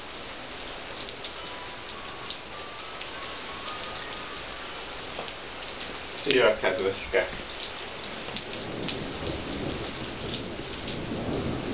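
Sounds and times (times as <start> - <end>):
steady dense rain pattering: 0.0 - 11.7
speech: 6.3 - 7.6.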